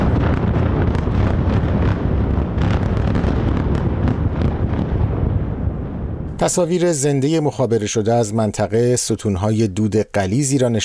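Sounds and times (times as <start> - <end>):
explosions from airstrikes: 0.0 - 6.8
heavy rumble: 0.0 - 6.8
wind: 0.0 - 10.8
speech: 6.4 - 10.8.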